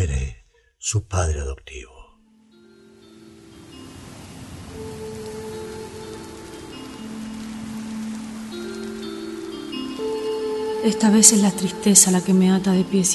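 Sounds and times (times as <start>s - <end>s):
speech: 0.8s - 2.0s, 10.8s - 13.1s
soft sustained musical tones: 2.2s - 13.1s
steady rain falling: 2.8s - 13.1s.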